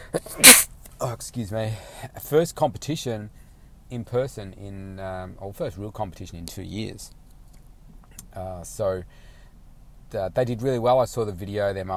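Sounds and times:
sneeze: 0.0s - 0.7s
speech: 0.1s - 7.2s, 8.4s - 9.3s, 10.1s - 11.9s.

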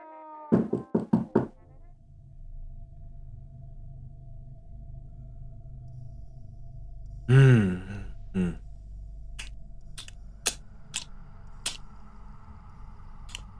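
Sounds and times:
knocking on a door: 0.6s - 1.5s
low steady hum: 1.6s - 13.5s.

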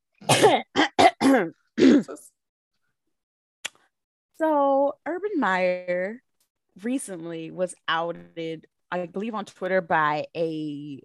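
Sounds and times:
person clearing throat: 0.2s - 2.3s
speech: 1.4s - 2.2s, 4.4s - 6.2s, 6.8s - 11.0s.

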